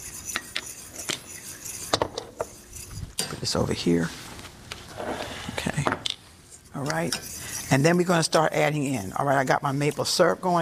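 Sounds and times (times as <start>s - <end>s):
utensil stirring in a pot, scraping and clinking against the sides: 0.0s - 4.2s, 6.4s - 10.6s
speech: 3.4s - 4.3s, 6.8s - 10.6s.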